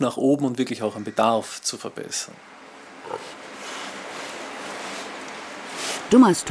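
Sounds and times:
speech: 0.0s - 3.4s, 6.1s - 6.4s
ventilation and animal activity noise in a pig barn: 0.8s - 6.4s
pig grunt in a pig barn in Dummersdorf near Rostock Germany: 3.0s - 3.4s.

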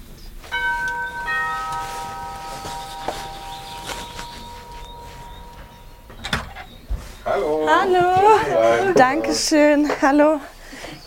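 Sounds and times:
two-tone doorbell chiming: 0.5s - 6.9s
speech: 7.8s - 10.5s.

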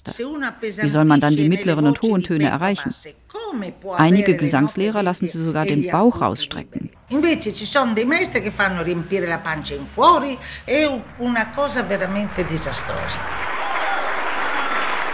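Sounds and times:
speech: 0.0s - 13.5s
group applauding: 12.3s - 15.1s.

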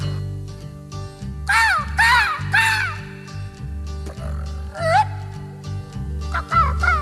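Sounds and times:
man's voice imitating seagull cries: 1.5s - 3.2s, 4.2s - 5.2s, 6.3s - 7.0s.

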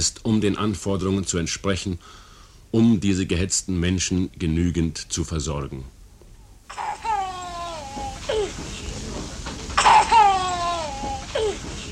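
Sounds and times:
speech: 0.0s - 6.0s
low murmur: 6.2s - 11.9s
child crying: 6.7s - 8.5s, 9.8s - 11.7s.

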